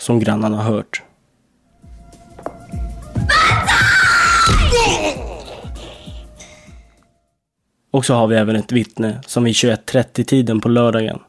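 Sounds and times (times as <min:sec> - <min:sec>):
speech: 0:00.0 - 0:01.1, 0:07.9 - 0:11.2
loud drawn-out scream: 0:03.2 - 0:06.0.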